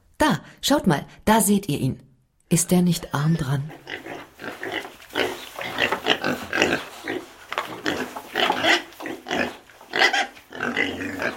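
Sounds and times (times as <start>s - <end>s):
speech: 0.3s - 4.5s
several pigs grunting and oinking: 3.7s - 11.3s.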